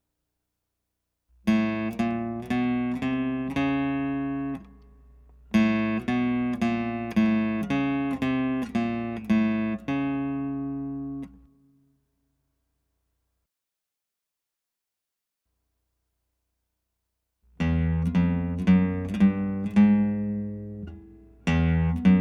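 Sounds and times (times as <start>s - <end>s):
flats on fifth and sixth guitar strings: 1.5s - 11.6s, 17.6s - 22.1s.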